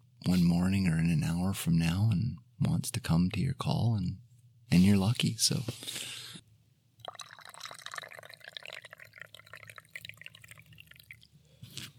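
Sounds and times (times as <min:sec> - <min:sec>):
speech: 0:00.2 - 0:06.2
coffee pouring into a cup: 0:07.0 - 0:11.4.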